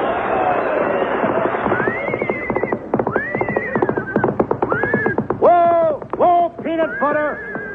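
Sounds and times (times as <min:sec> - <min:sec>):
horse hooves clopping: 0:00.1 - 0:07.7
horse neighing: 0:01.9 - 0:05.2, 0:06.8 - 0:07.7.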